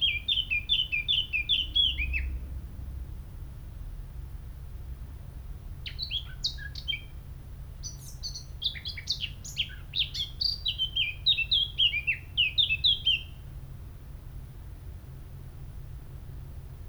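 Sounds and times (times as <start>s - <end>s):
Eurasian blackcap Sylvia atricapilla singing a fluty warble: 0.0s - 2.3s, 5.9s - 7.1s, 7.8s - 13.3s.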